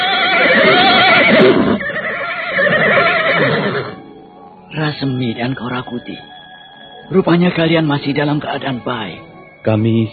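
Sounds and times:
horse neighing: 0.0s - 4.0s
speech: 4.8s - 6.4s, 7.1s - 10.1s.

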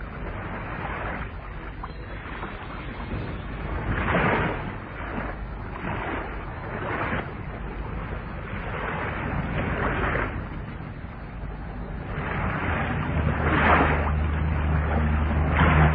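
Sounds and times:
small boat churning across water: 0.0s - 15.9s.

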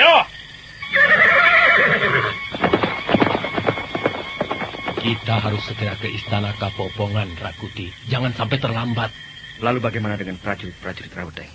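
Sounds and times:
horse hooves clip-clopping as it moves away: 0.1s - 11.1s
horse neighing as its rider sets off: 0.8s - 5.4s
speech: 5.3s - 11.5s.

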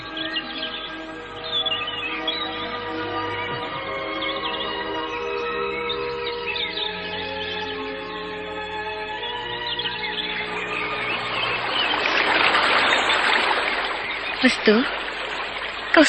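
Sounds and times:
tonal bird-like chirps: 0.0s - 7.9s, 9.2s - 16.0s
rocky river stream water rushing: 10.8s - 16.0s
speech: 14.4s - 15.0s.

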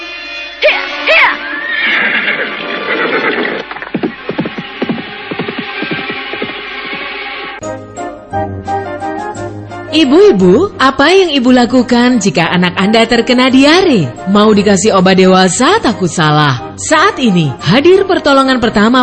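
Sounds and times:
horse whinnying: 1.1s - 5.4s
rough rhythmic thumping: 3.6s - 7.6s
speech: 10.0s - 19.0s.

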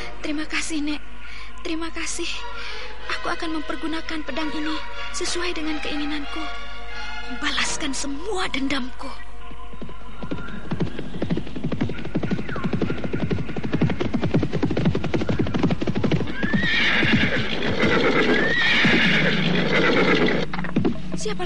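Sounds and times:
speech: 0.3s - 2.6s, 3.2s - 6.7s, 7.3s - 9.9s
horses of approaching riders galloping: 9.7s - 21.4s.

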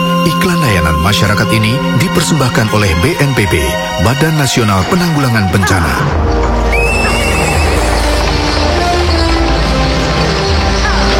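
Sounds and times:
speech: 0.2s - 6.5s
rumble of horse-drawn carriage wheels on a road: 6.3s - 11.1s
horse hooves clip-clopping on a road: 6.4s - 11.1s
horse whinnying: 6.6s - 8.4s.

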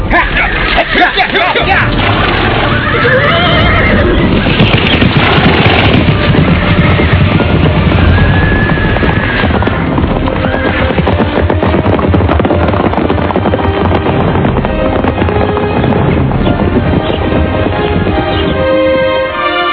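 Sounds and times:
horse hooves clattering at a full gallop: 0.2s - 19.5s
brown horse neighing: 2.2s - 5.7s, 8.0s - 9.9s.

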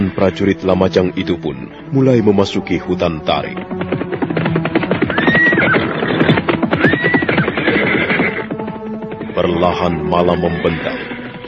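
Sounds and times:
horses galloping through forest: 0.0s - 11.4s
speech: 0.1s - 4.1s, 9.5s - 11.4s
horse neighing: 4.8s - 8.5s, 10.3s - 11.3s.

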